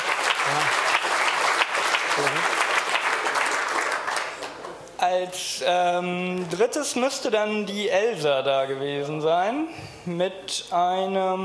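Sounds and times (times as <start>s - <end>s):
people cheering: 0.0s - 4.1s
crowd applauding: 0.0s - 4.8s
speech: 5.1s - 11.4s.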